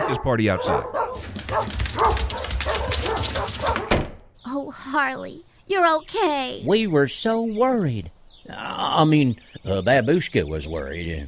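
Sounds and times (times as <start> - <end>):
several dogs barking: 0.0 - 4.0
speech: 0.1 - 11.2.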